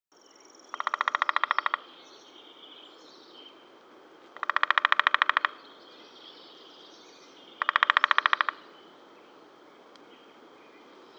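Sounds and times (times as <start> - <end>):
birdsong: 0.2 - 11.1
hairy woodpecker: 0.7 - 2.0, 4.4 - 5.7, 7.5 - 8.7.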